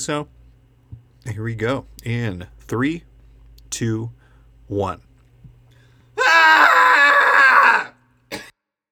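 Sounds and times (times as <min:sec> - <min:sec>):
speech: 0:00.0 - 0:00.4, 0:01.2 - 0:03.1, 0:03.7 - 0:05.1
person screaming loudly: 0:06.2 - 0:08.0.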